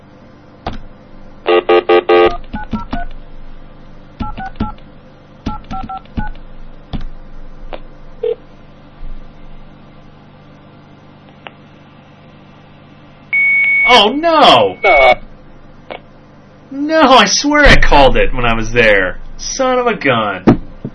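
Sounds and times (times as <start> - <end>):
single keypad tones: 1.5 - 3.2, 4.2 - 4.8, 5.5 - 6.4
speech: 13.9 - 15.2, 16.8 - 20.5.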